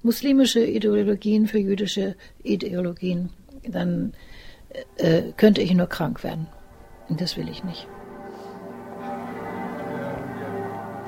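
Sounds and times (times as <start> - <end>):
speech: 0.0 - 8.0
church bells ringing: 4.8 - 11.0.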